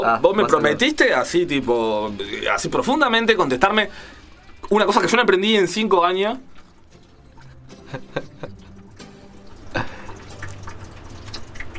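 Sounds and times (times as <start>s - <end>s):
speech: 0.0s - 6.5s
rain stick being turned: 1.6s - 11.7s.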